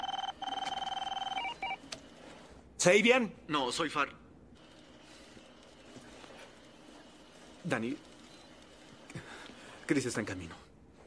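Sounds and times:
electronic telephone ring: 0:00.0 - 0:01.8
speech: 0:02.8 - 0:04.2, 0:07.6 - 0:08.1, 0:09.9 - 0:10.6.

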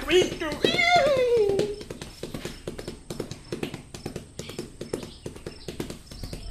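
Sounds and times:
ridden horse galloping at full speed: 0:00.0 - 0:06.4.

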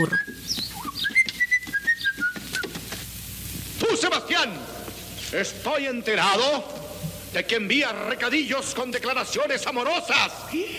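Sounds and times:
speech: 0:00.0 - 0:00.3, 0:04.4 - 0:10.7
person whistling a song: 0:00.0 - 0:02.8.

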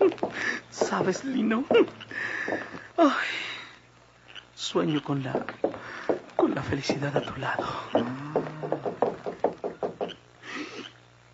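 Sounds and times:
firm knocking on a wooden door: 0:00.0 - 0:01.9, 0:05.3 - 0:10.2
speech: 0:00.9 - 0:03.5, 0:04.7 - 0:08.5.

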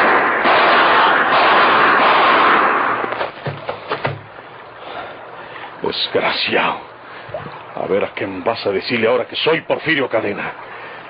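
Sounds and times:
burst of gunshots: 0:00.0 - 0:04.3
steady hiss: 0:00.0 - 0:11.0
speech: 0:05.9 - 0:10.7.

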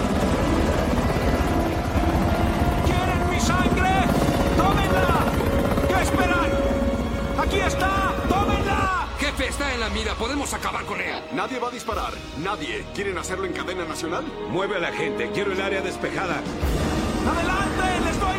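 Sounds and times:
helicopter hovering with rotors thudding: 0:00.0 - 0:10.3
speech: 0:10.6 - 0:18.3.

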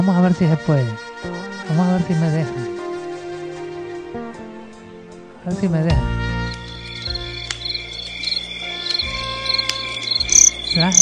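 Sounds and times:
speech: 0:00.0 - 0:02.7, 0:05.4 - 0:06.2, 0:10.8 - 0:11.0
crickets chirping in a forest beside a campfire: 0:06.4 - 0:11.0.

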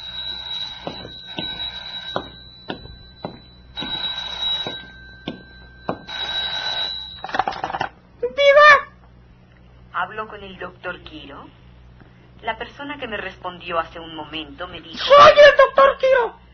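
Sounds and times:
telephone ringing with a steady high electronic tone: 0:00.0 - 0:08.0
speech: 0:10.2 - 0:11.6, 0:12.4 - 0:16.4.

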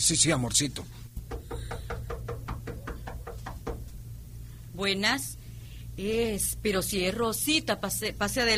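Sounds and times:
speech: 0:00.0 - 0:01.2, 0:04.8 - 0:05.4, 0:06.0 - 0:08.5
rapid knocking on the door of a home: 0:01.2 - 0:04.0.

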